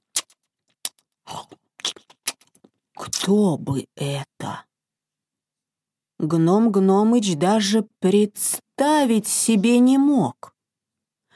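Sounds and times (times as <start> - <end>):
wet smacking chewing with crunchy bites: 0.0 - 2.8
speech: 3.2 - 4.7, 6.2 - 10.5.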